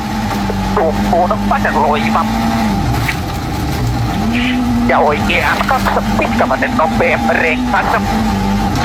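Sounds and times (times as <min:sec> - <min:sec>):
rally car engine droning at speed during a rally in San Rosendo: 0:00.0 - 0:08.8
person talking: 0:00.5 - 0:02.4, 0:04.2 - 0:08.2.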